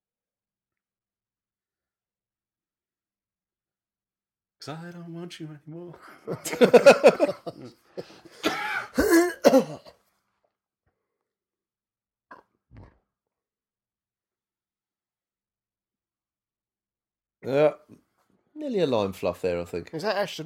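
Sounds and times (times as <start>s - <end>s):
speech: 4.6s - 8.2s, 17.5s - 17.8s, 18.6s - 20.4s
laughter: 6.0s - 9.0s
harsh coughs: 8.0s - 10.0s.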